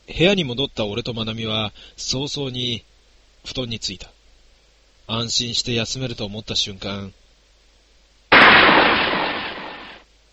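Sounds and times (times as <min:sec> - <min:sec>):
speech: 0:00.1 - 0:04.2, 0:05.1 - 0:07.2
gunshot echoing through a guesthouse: 0:08.3 - 0:10.0.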